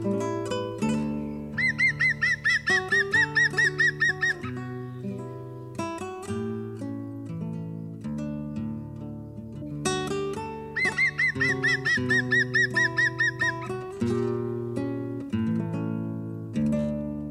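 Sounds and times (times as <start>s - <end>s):
layered musical backing: 0.0s - 17.2s
European green woodpecker laughing call: 1.6s - 4.6s, 10.8s - 13.8s.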